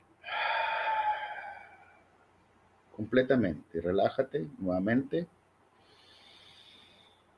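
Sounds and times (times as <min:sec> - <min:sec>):
deep controlled breath, inhale through nose, exhale through mouth: 0:00.2 - 0:02.0, 0:05.8 - 0:07.3
speech: 0:03.0 - 0:05.4.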